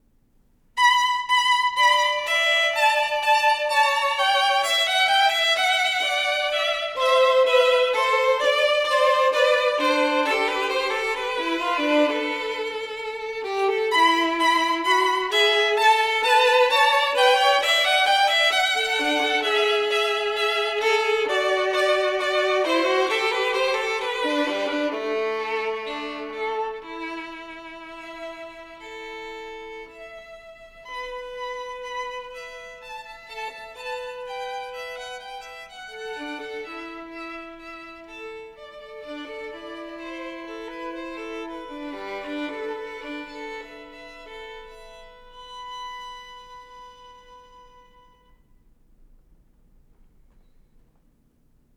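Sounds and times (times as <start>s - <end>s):
two violins playing a duo on a Hungarian song: 0.8s - 48.3s.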